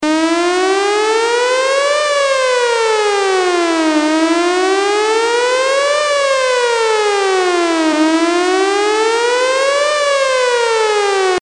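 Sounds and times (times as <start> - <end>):
PPI nuclear alert siren: 0.0 - 11.3.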